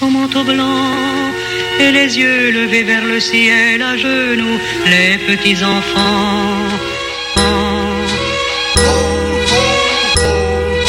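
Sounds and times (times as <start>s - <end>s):
speech: 0.2s - 7.6s
bells ringing: 7.3s - 10.8s.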